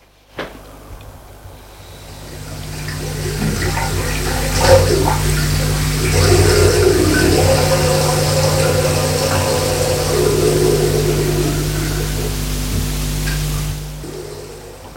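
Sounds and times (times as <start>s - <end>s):
tap running with water splashing: 1.9s - 14.9s.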